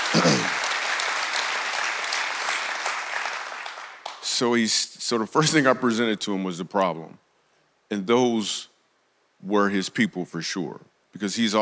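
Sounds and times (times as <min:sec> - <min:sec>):
audience clapping: 0:00.0 - 0:04.4
speech: 0:04.4 - 0:07.2, 0:07.9 - 0:08.7, 0:09.4 - 0:11.6.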